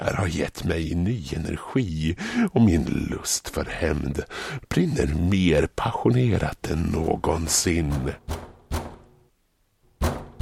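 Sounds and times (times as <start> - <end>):
speech: 0.2 - 8.4
heavy knocks banging on a door: 8.2 - 9.1, 10.0 - 10.4.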